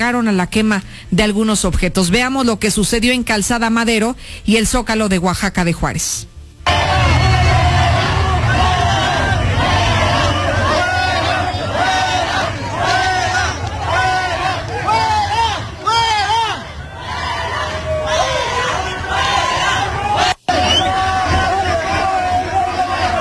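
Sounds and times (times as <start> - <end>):
speech: 0.0 - 6.3
large crowd of rival union members shouting in an outdoor fistfight in Oaxaca de Juárez: 6.6 - 23.1.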